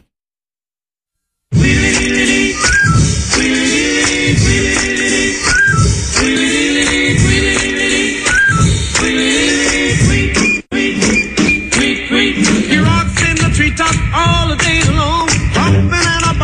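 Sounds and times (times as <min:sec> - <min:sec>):
loud full-band recorded song with drums and bass: 0:01.6 - 0:16.4
bright whistled melody: 0:02.4 - 0:04.1, 0:05.2 - 0:06.3, 0:08.2 - 0:09.1, 0:10.4 - 0:12.0.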